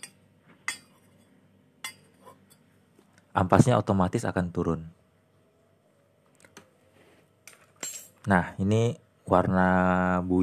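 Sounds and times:
spoon clinking against ceramic coffee cup: 0.0s - 2.7s
speech: 3.4s - 5.0s, 8.3s - 10.4s.

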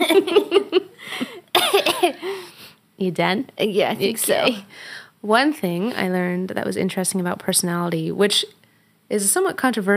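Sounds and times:
laughter: 0.0s - 1.3s
raspy breath: 0.9s - 1.5s, 2.2s - 2.8s, 4.7s - 5.2s
throaty coughing: 1.2s - 2.3s
speech: 3.0s - 9.9s.

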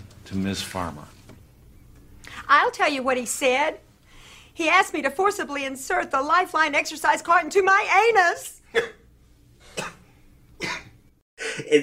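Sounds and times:
speech: 0.3s - 1.2s, 2.5s - 3.9s, 4.6s - 9.0s
man faking stifled coughs to hide laughter: 8.7s - 11.8s.

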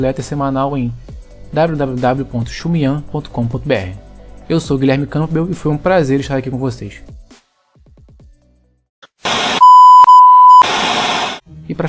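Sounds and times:
speech: 0.0s - 7.2s, 11.7s - 11.8s
harsh bursts of static-like noise: 9.3s - 11.4s
electronic phone notification beep: 9.6s - 10.6s.

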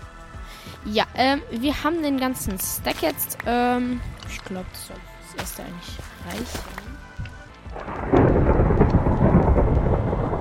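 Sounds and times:
speech: 0.8s - 7.0s
video game low rumbling thunder: 7.2s - 10.3s.

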